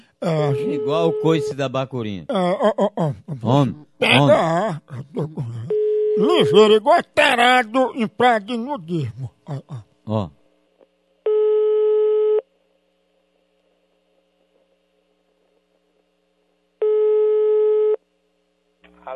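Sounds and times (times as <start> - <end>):
speech: 0.2 - 10.4
telephone ringback tone while a call connects: 0.5 - 1.5, 11.3 - 12.4, 16.8 - 18.0.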